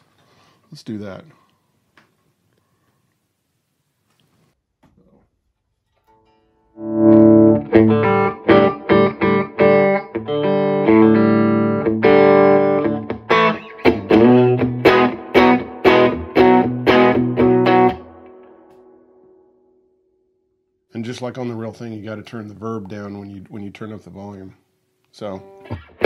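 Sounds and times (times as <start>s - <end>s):
speech: 0.7s - 1.4s, 21.2s - 24.6s, 25.2s - 26.0s
overdriven electric guitar through an amp at low volume: 6.7s - 19.6s, 25.4s - 26.0s.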